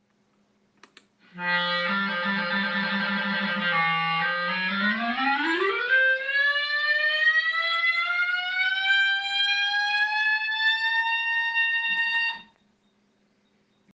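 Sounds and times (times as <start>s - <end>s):
clarinet: 1.3s - 7.5s, 8.5s - 12.6s.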